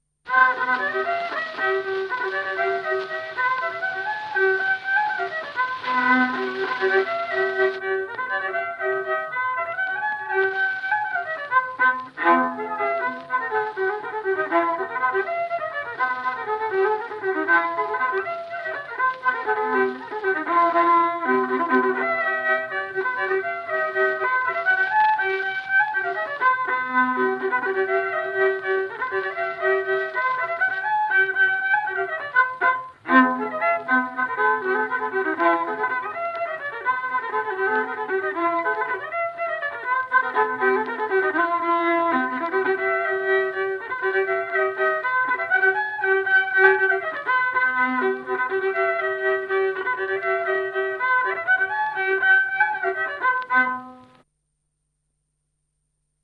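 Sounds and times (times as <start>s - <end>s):
folk violin music from Kihnu: 0.3s - 54.2s.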